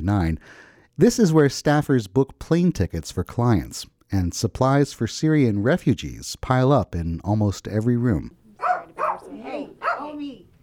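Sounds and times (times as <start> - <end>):
speech: 0.0 - 8.4
small dog barking in an office: 8.6 - 10.2.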